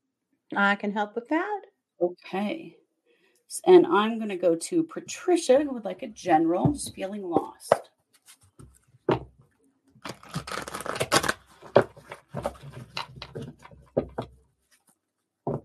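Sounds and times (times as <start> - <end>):
speech: 0.5 - 2.8, 3.5 - 7.9
deck of cards being shuffled, squared and cut: 10.0 - 13.7.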